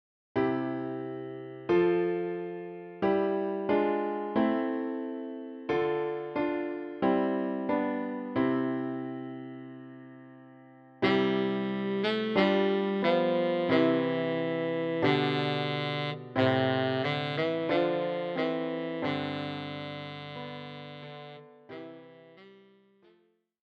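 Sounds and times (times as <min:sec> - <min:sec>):
piano accompanying tenor saxophone: 0:00.4 - 0:23.2
tenor saxophone: 0:11.0 - 0:23.2.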